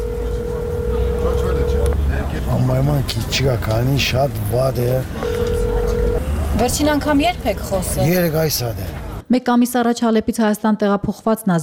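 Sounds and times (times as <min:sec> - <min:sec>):
steady telephone line tone: 0:00.0 - 0:02.0, 0:05.2 - 0:06.3
rough noise: 0:00.0 - 0:09.3
speech: 0:02.6 - 0:05.4, 0:06.5 - 0:11.6.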